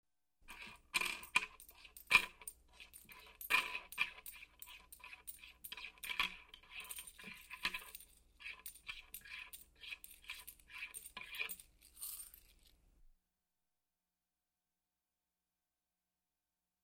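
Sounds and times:
coins being counted in a box: 0.5s - 12.8s.

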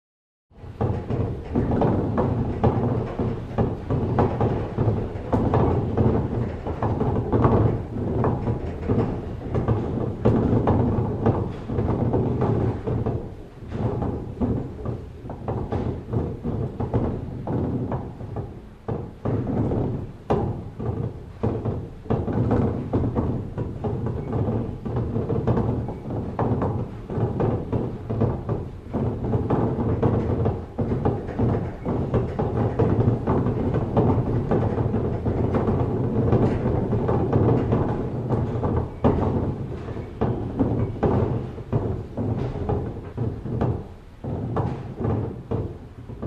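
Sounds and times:
woods being transported on a conveyor: 0.7s - 46.2s.

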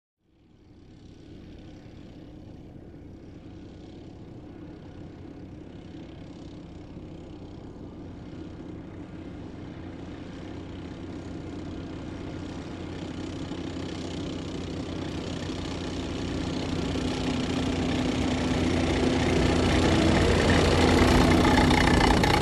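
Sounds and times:
old military truck passing by: 10.7s - 22.4s.

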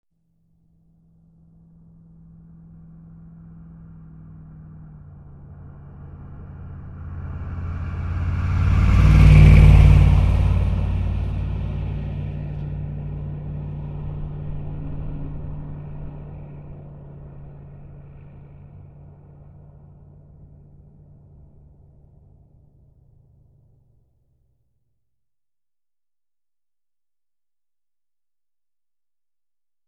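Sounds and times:
pickup truck approaching and passing by: 1.7s - 23.8s.

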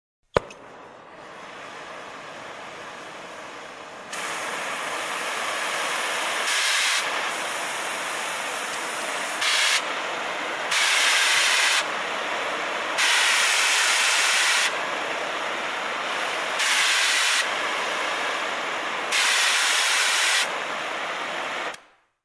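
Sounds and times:
paint sprayer machine at a construction site: 1.2s - 21.8s.

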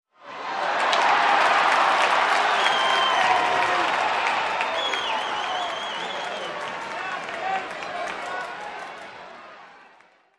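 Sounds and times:
sports game crowd applauding: 0.3s - 10.3s
sports game crowd whistling: 1.0s - 9.2s.

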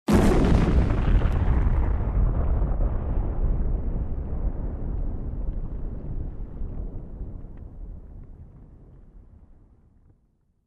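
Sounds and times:
huge explosion up-close: 0.1s - 9.8s.

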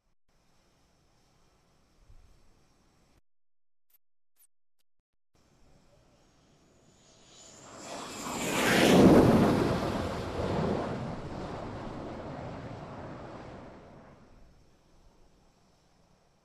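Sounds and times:
aircraft flying over at top speed: 5.5s - 14.4s.

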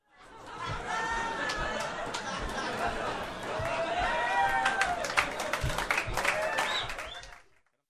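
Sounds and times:
audience laughing: 0.2s - 7.3s
audience clapping: 0.5s - 7.8s.

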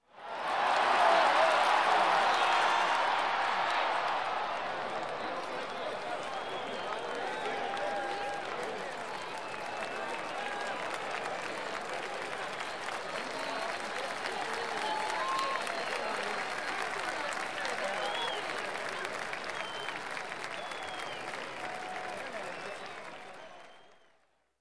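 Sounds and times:
audience cheering: 0.0s - 24.0s.

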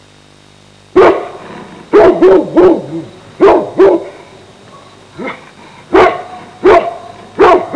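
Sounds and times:
large hound barking: 1.0s - 4.2s, 4.8s - 7.7s.

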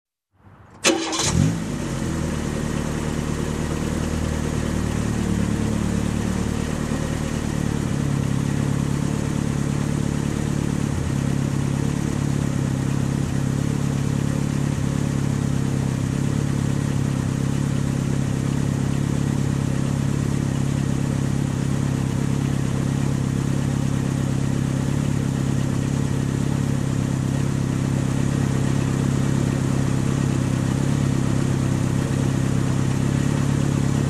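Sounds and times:
car engine ignition and running idle: 0.4s - 34.0s.

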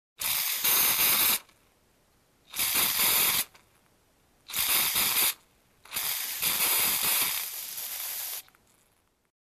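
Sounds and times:
artificial snow spray: 0.2s - 1.5s, 2.5s - 3.5s, 4.5s - 8.5s.

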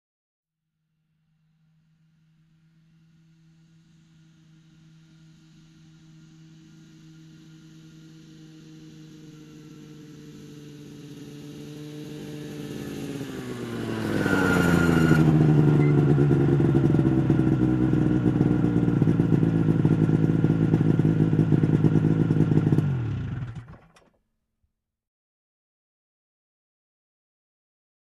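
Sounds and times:
motorcycle approaching and parking: 2.6s - 24.2s.

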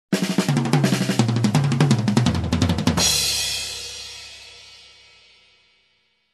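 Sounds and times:
fast snare and tom drum fill: 0.1s - 4.4s.

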